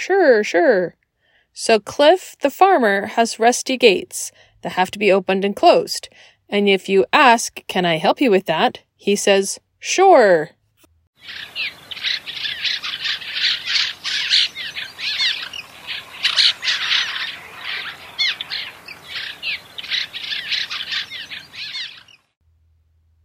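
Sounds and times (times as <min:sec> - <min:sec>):
speech: 0:00.0 - 0:01.0, 0:01.6 - 0:10.6, 0:11.2 - 0:12.2
cliff swallows chirping and twittering: 0:11.2 - 0:22.4.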